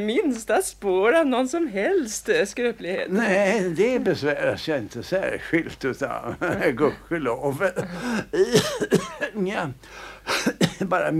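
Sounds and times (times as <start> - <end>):
speech: 0.0 - 11.1
man with bronchitis coughing: 7.7 - 9.4, 10.2 - 11.0.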